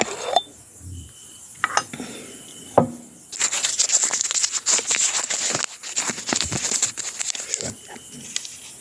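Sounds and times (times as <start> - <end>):
glass jar clinks and taps: 0.0 - 2.0
paper slips rustling and crinkling in a glass jar: 3.4 - 8.7.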